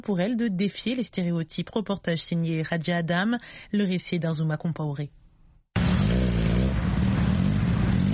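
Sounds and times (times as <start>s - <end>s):
speech: 0.0s - 5.2s
motorcycle engine starting and revving in Nairobi city streets: 5.8s - 8.1s.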